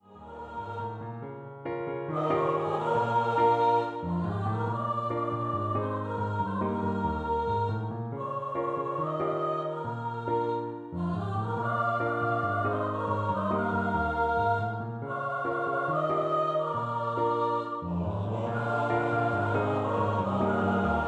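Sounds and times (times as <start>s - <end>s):
mixed voice choir singing in unison and three-part round: 0.0s - 1.2s, 2.1s - 21.0s.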